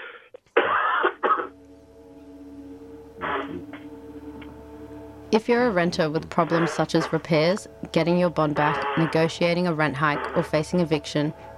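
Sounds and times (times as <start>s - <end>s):
person clearing throat: 0.0s - 1.5s, 3.2s - 3.7s
faint hum: 0.6s - 11.5s
speech: 5.3s - 11.5s.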